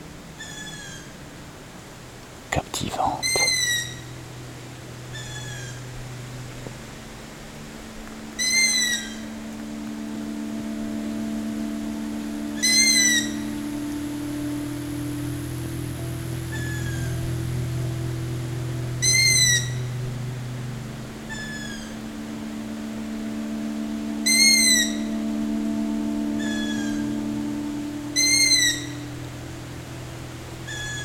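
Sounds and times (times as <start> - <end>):
steady low hum: 0.0 - 31.0
night bird calls in short repeated cries: 0.4 - 1.2, 2.8 - 4.2, 5.1 - 6.0, 8.3 - 9.4, 11.2 - 14.6, 18.6 - 20.0, 21.2 - 22.0, 23.4 - 29.1, 30.6 - 31.0.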